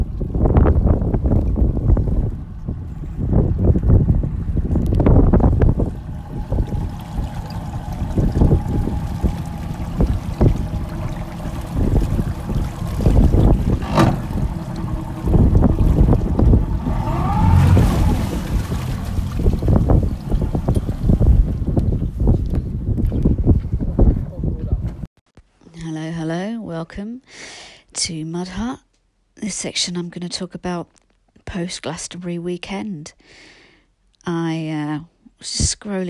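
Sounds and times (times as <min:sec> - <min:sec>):
water sloshing: 0:00.0 - 0:22.4
wind buffeting the microphone: 0:00.0 - 0:25.1
boat engine chugging at low speed returning into harbour: 0:00.8 - 0:22.2
speech: 0:26.9 - 0:28.8, 0:29.5 - 0:33.6, 0:34.2 - 0:36.0.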